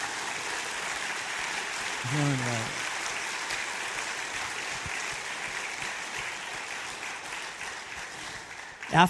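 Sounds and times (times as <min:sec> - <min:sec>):
crowd applauding: 0:00.0 - 0:09.0
speech: 0:02.0 - 0:02.8
person shouting or cheering: 0:02.1 - 0:02.7.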